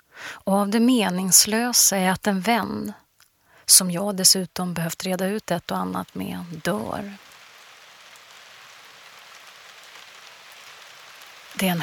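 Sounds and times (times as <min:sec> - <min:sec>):
speech: 0:00.5 - 0:03.0, 0:03.7 - 0:07.3, 0:11.6 - 0:11.8
rain pelting down over a church hill in Gustavsberg on an autumn day: 0:04.2 - 0:11.8.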